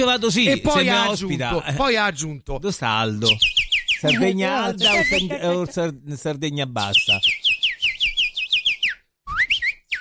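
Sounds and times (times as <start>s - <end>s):
speech: 0.0s - 7.4s
laughter: 0.6s - 1.5s, 4.1s - 5.9s
person whistling an imitation of goldfinch song: 3.3s - 5.4s, 7.0s - 9.9s.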